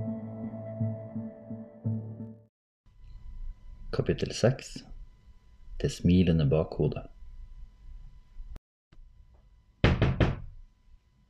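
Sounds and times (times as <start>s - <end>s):
speech: 4.0s - 4.9s, 5.8s - 7.1s
knocking on a door: 9.8s - 10.6s.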